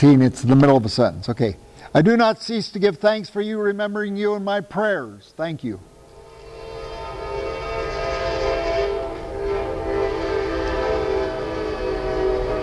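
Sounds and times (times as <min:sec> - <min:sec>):
speech: 0:00.0 - 0:05.9
train rumbling past: 0:05.9 - 0:12.6.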